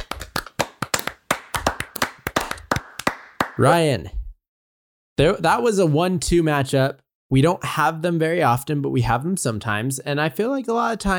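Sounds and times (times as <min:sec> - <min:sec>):
a few people clapping hands: 0:00.0 - 0:03.8
speech: 0:03.6 - 0:04.2, 0:05.2 - 0:11.1.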